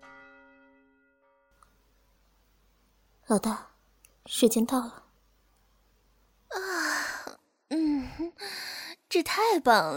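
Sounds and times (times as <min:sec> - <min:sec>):
deep clock bell striking eleven o'clock in a city centre: 0:00.0 - 0:01.6
low noise: 0:01.6 - 0:09.9
speech: 0:03.3 - 0:05.0, 0:09.1 - 0:09.9.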